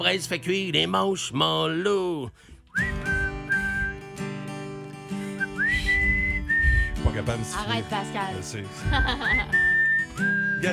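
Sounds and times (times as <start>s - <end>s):
speech: 0.0s - 2.9s, 7.2s - 10.7s
person whistling sustained notes: 2.6s - 4.3s, 5.2s - 7.3s, 9.0s - 10.7s
laughter: 8.7s - 9.8s.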